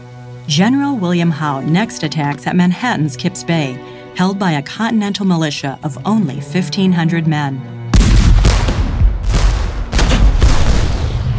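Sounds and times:
speech: 0:00.5 - 0:07.8
heavy cannon fire barrage: 0:07.9 - 0:11.3.

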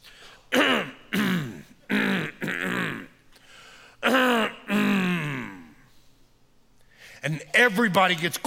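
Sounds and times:
person imitating throat clearing with gruff rasping bursts: 0:00.5 - 0:03.2, 0:04.0 - 0:05.8
speech: 0:07.2 - 0:08.4.

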